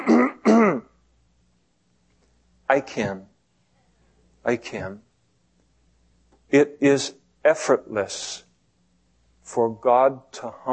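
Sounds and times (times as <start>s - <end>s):
person clearing their throat: 0.0s - 0.9s
speech: 2.7s - 3.3s, 4.4s - 5.1s, 6.5s - 8.4s, 9.5s - 10.7s.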